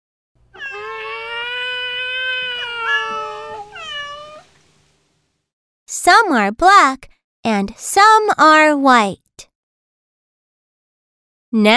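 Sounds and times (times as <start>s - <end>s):
newborn kitten meowing: 0.6s - 4.5s
speech: 6.0s - 9.2s, 11.6s - 11.7s.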